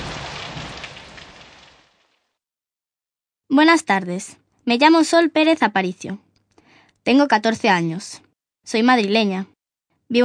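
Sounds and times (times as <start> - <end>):
heavy rain pouring: 0.0 - 2.3
speech: 3.6 - 6.3, 7.0 - 9.5.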